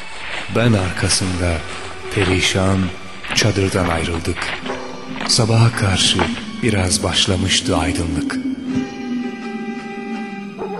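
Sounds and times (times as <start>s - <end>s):
speech: 0.5s - 4.7s, 5.3s - 8.5s
steady humming tonal drone: 1.8s - 10.7s
village dogs barking and yelping as they attack: 9.1s - 10.7s
dogs whimpering: 10.5s - 10.7s.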